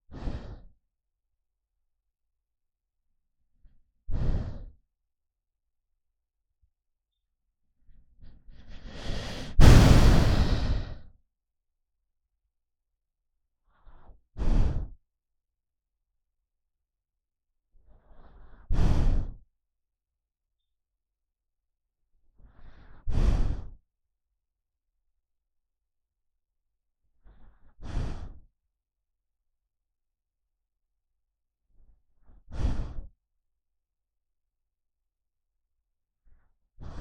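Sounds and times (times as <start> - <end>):
dog breathing while sleeping: 0.0 - 0.8, 4.1 - 4.8, 8.2 - 11.0, 13.7 - 15.0, 17.8 - 19.4, 22.4 - 23.8, 27.2 - 28.5, 32.2 - 33.2, 36.8 - 37.0.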